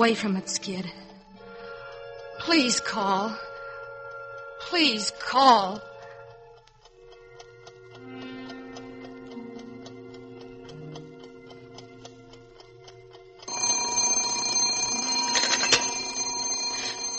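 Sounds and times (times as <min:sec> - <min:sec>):
speech: 0:00.0 - 0:01.1, 0:02.4 - 0:03.5, 0:04.6 - 0:05.9
alarm clock ticking: 0:00.0 - 0:17.1
alarm clock bell ringing: 0:13.5 - 0:17.1.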